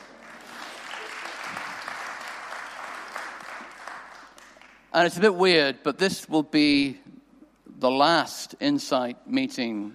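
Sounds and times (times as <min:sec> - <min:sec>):
audience applause: 0:00.0 - 0:04.8
speech: 0:05.0 - 0:07.1, 0:07.8 - 0:09.9.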